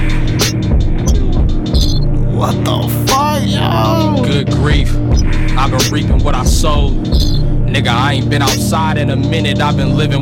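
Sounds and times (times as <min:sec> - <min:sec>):
distorted bass-saturated chopped-sample hip-hop beat: 0:00.0 - 0:10.2
person rapping: 0:01.1 - 0:01.5, 0:02.3 - 0:05.0, 0:05.6 - 0:07.0, 0:07.7 - 0:10.2
speech: 0:07.8 - 0:10.2.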